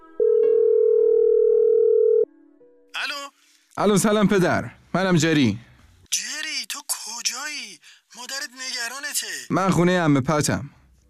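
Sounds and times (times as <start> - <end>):
loud steady telephone dial tone: 0.2 - 2.3
speech: 3.8 - 6.2, 9.2 - 10.8.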